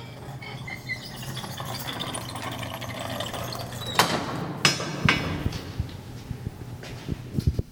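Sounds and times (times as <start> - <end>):
knocks and creaks of an old tunnel door opening: 0.0 - 6.0
old tunnel door mechanism rumbling: 0.0 - 6.0.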